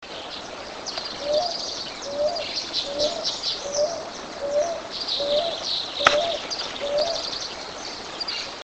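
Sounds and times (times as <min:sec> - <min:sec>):
torcacita dove calling: 0:00.2 - 0:08.6.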